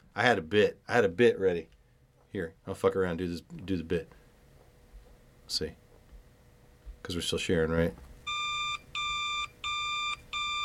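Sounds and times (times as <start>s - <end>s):
speech: 0.2s - 4.2s, 5.5s - 5.8s, 7.0s - 8.1s
phone ringing with a bright electronic tone: 8.3s - 10.6s.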